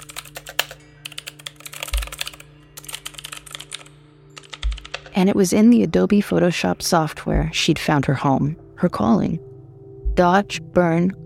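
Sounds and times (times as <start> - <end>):
rapid computer keyboard typing: 0.0 - 5.2
steady low hum: 3.8 - 11.2
speech: 5.2 - 9.5, 10.2 - 11.2
soft thumps: 7.3 - 7.6.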